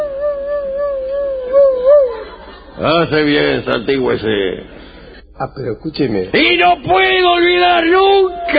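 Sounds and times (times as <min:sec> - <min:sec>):
dog howling: 0:00.0 - 0:02.4
speech: 0:02.8 - 0:04.8, 0:05.4 - 0:08.5.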